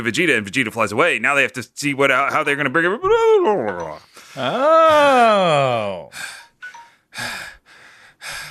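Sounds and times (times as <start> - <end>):
speech: 0.0 - 6.4, 7.2 - 7.5
forceful rasping breaths in mock concentration breathing: 4.0 - 8.4.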